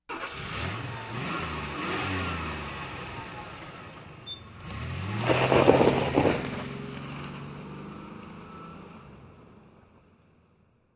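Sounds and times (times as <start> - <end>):
car engine starting and revving: 0.1 - 10.0.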